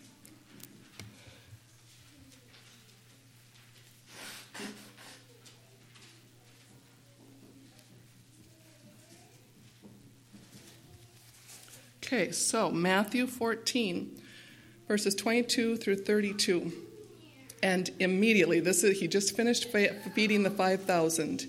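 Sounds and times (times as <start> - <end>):
steady low electrical hum: 0.0 - 21.4
person blowing nose: 4.1 - 5.3
speech: 12.1 - 14.2, 14.9 - 16.9, 17.6 - 21.4.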